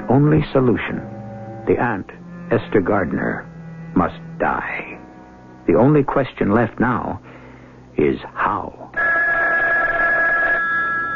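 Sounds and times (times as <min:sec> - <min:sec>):
speech: 0:00.1 - 0:04.9, 0:05.7 - 0:07.3, 0:08.0 - 0:08.8
telephone ringing in a radio drama: 0:09.0 - 0:11.1.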